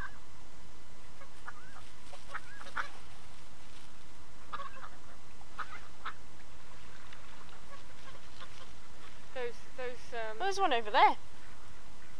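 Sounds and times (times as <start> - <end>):
steady outdoor hiss: 0.0 - 12.1
swans calling across the water: 1.2 - 9.6
speech: 10.5 - 11.2.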